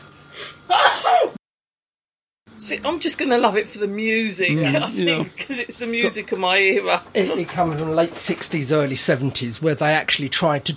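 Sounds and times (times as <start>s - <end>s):
person sneezing: 0.4s - 1.4s
speech: 2.6s - 10.7s.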